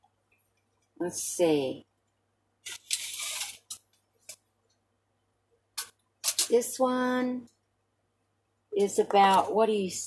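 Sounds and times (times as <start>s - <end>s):
speech: 1.0s - 1.9s, 6.5s - 7.6s, 8.8s - 10.0s
measuring tape being pulled out: 2.6s - 3.8s.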